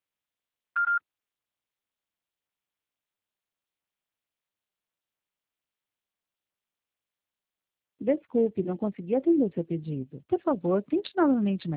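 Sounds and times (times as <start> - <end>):
answering machine beep tone: 0.8 - 1.0
speech: 8.0 - 11.7.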